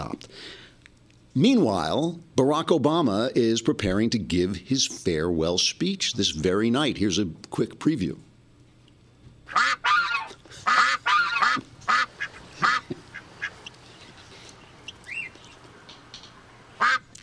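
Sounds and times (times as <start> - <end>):
speech: 1.3 - 8.3
duck quacking loudly in a rapid raspy series: 9.5 - 14.2, 16.8 - 17.1.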